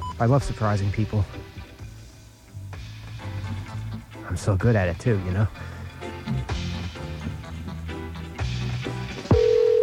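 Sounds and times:
music: 0.0 - 9.8
speech: 0.2 - 1.6, 4.3 - 6.5
phone ringing on the line during an outgoing call in Milwaukee: 9.3 - 9.8.

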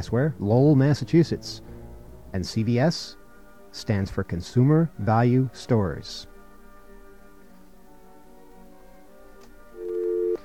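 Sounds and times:
speech: 0.0 - 1.7, 2.3 - 6.3
pulsating telephone dial tone: 9.8 - 10.4.

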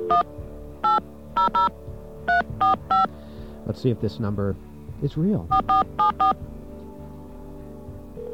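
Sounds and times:
touch-tone keypress beeps dialing a phone number: 0.0 - 1.7, 2.3 - 3.1, 5.5 - 6.4
speech: 0.1 - 6.6.

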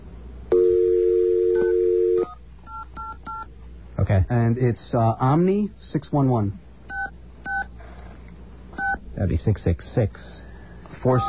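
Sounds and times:
long steady two-note phone tone: 0.5 - 3.4
short phone keypad beeps: 1.6 - 3.5, 6.9 - 7.7, 8.8 - 9.0
speech: 4.1 - 6.6, 9.2 - 10.4, 11.0 - 11.2.

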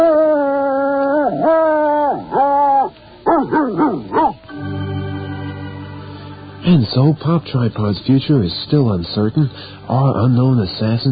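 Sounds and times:
dog howling in long wavering tones: 0.0 - 4.4
speech: 6.7 - 11.0.

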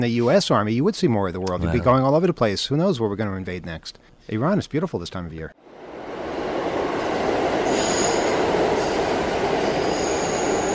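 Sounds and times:
speech: 0.0 - 5.8
subway train rumbling through a station: 5.6 - 10.7
thin metallic wheel squeals of a subway train: 9.7 - 10.7.

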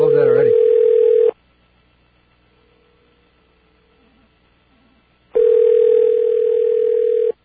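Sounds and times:
telephone ringback tone from a call waiting to be answered: 0.0 - 1.4, 5.4 - 7.4.

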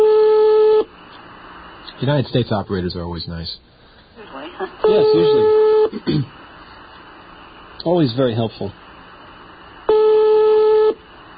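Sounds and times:
speech: 2.0 - 3.7, 4.6 - 6.4, 7.8 - 8.8
electronic telephone ring tone: 4.8 - 5.9, 9.9 - 11.0.

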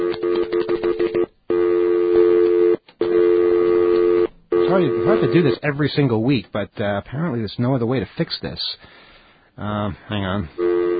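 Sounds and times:
buzzy telephone line tone over a muffled phone connection: 0.0 - 5.6, 10.6 - 10.9
speech: 4.7 - 9.0, 9.6 - 10.7.

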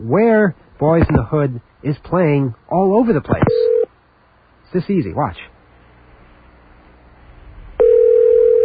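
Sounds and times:
speech: 0.0 - 3.7, 4.7 - 5.5
phone line click opening a call to a movie-listings service: 7.8 - 8.6
steady loud telephone dial tone: 7.8 - 8.6.

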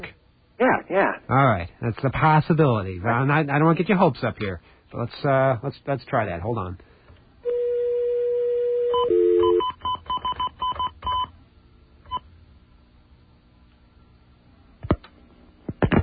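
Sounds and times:
speech: 0.6 - 6.9
steady telephone dial tone: 7.5 - 11.2
telephone keypad DTMF tones: 8.9 - 11.3.

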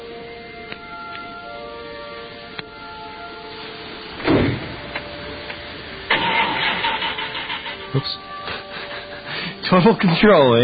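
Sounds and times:
car engine starting and revving: 3.8 - 8.2
speech: 7.9 - 8.3, 9.7 - 10.6.

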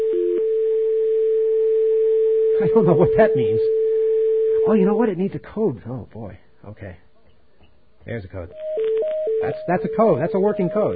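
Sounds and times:
telephone dial tone: 0.0 - 2.6, 3.4 - 4.7, 8.5 - 10.9
speech: 2.6 - 3.8, 4.7 - 7.0, 8.0 - 8.6, 9.4 - 10.9
short telephone dialing beep: 8.5 - 10.9.

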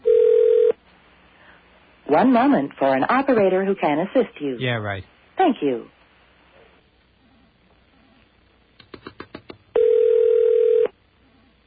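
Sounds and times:
steady mid-pitched telephone line tone on a long-distance call: 0.0 - 0.8, 9.8 - 11.0
speech: 2.1 - 6.0.

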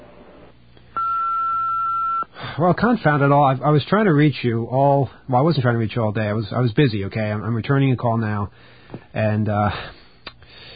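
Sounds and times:
steady electronic answering machine beep: 1.0 - 2.3
speech: 2.6 - 10.0.

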